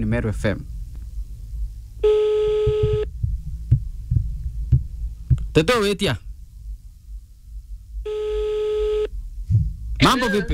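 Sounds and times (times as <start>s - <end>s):
speech: 0.0s - 0.8s, 5.6s - 6.2s, 10.0s - 10.5s
soft low thumps: 0.8s - 8.1s, 9.1s - 10.0s
buzzing phone ring tone of an unanswered call: 2.0s - 3.1s, 8.1s - 9.1s.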